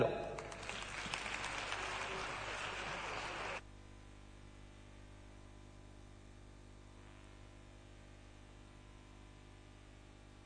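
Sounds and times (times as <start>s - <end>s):
quiet room hum: 0.0s - 10.4s
audience applause: 0.4s - 3.6s.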